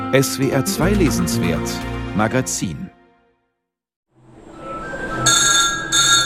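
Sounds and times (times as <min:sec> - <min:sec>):
speech: 0:00.1 - 0:02.9
wall-mounted telephone bell ringing in a printing house press room in Göttingen Germany: 0:05.3 - 0:06.2.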